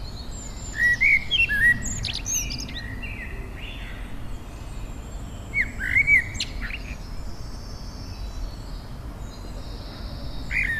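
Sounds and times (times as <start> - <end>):
native hedgerow songbird whistling and twittering: 0.6 - 2.9, 5.6 - 6.9, 10.5 - 10.7.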